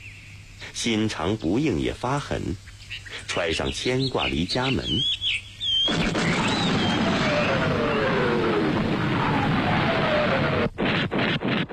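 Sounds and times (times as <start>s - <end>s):
speech: 0.6s - 5.2s
descending shell whistles overhead: 3.9s - 11.4s
artillery shell explosions: 5.9s - 11.7s.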